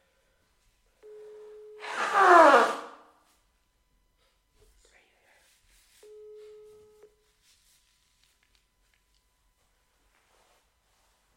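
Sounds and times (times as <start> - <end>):
person blowing their nose: 1.8 - 3.0
steady unbroken telephone dialing tone: 6.0 - 7.1.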